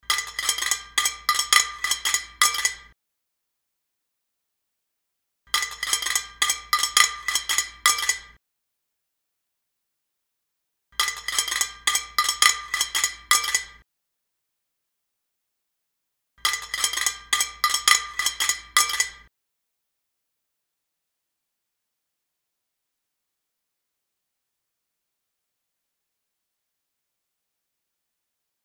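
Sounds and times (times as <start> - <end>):
porcelain plate: 0.0 - 2.9, 5.6 - 8.4, 11.0 - 13.8, 16.5 - 19.3.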